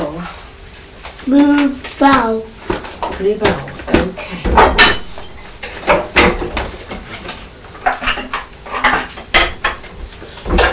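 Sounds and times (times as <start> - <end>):
speech: 1.2 - 2.5, 3.2 - 4.6
pots and pans clattering in a sink while being washed: 2.7 - 10.7.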